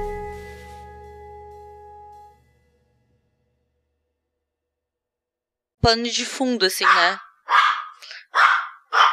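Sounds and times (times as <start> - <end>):
speech: 5.9 - 7.6
female dog barking harshly: 6.8 - 9.1.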